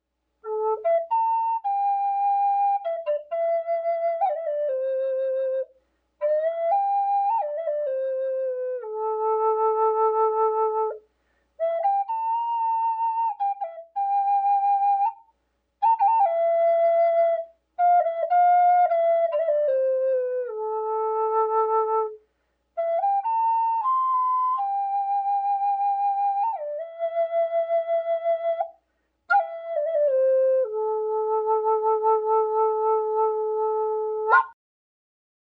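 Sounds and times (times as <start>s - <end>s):
flutes playing: 0.4s - 11.0s, 11.6s - 22.2s, 22.8s - 34.6s.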